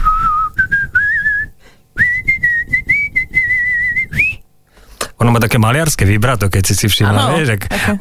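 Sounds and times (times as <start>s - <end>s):
person whistling a short melody: 0.0s - 4.4s
speech: 5.3s - 7.9s.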